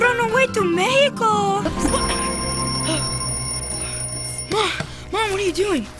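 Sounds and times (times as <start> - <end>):
speech: 0.5 - 1.8, 5.3 - 5.9
alarm clock buzzing: 1.7 - 4.9
electronic chirps: 1.8 - 4.6.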